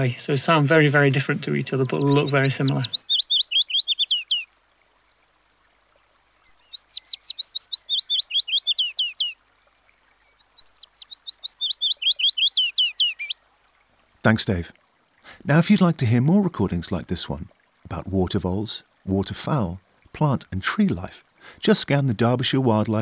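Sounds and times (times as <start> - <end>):
speech: 0.0 - 3.0, 14.2 - 23.0
willow warbler singing high in trees: 0.0 - 13.5.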